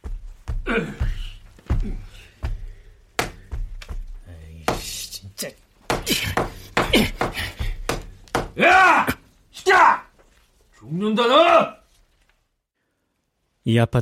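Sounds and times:
rubber mallet in a sleep sock pounding on an apartment wall: 0.0 - 5.0, 5.8 - 9.0
speech: 0.7 - 1.1, 11.0 - 11.7, 13.7 - 14.0.

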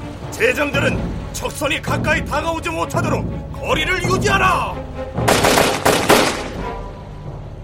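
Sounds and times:
speech: 0.4 - 5.2
matchlock muskets firing during a naval battle between warships: 5.3 - 6.7.

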